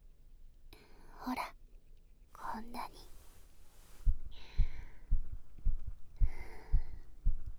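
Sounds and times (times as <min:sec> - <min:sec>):
faint tones: 0:00.6 - 0:07.5
speech: 0:01.2 - 0:01.6
fast steady heartbeat: 0:04.0 - 0:07.5.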